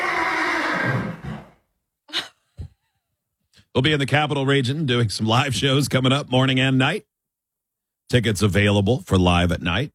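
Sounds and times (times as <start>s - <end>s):
horse whinnying during a horse rescue: 0.0s - 1.6s
speech: 3.8s - 7.1s, 8.1s - 9.9s.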